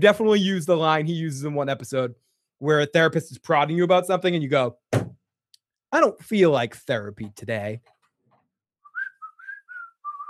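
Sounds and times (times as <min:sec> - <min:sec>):
speech: 0:00.0 - 0:04.9, 0:05.9 - 0:07.9
person whistling a short jaunty tune: 0:08.9 - 0:10.2.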